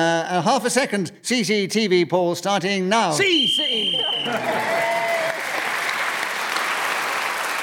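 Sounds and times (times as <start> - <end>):
speech: 0.0 - 5.0
brief whistle: 3.2 - 4.4
studio audience applause: 4.0 - 7.6.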